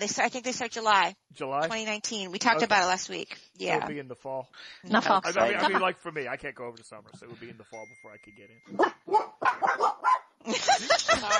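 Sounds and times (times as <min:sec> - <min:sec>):
speech: 0:00.0 - 0:11.3
laughter: 0:05.2 - 0:07.8, 0:10.5 - 0:11.3
dog barking: 0:08.7 - 0:10.3.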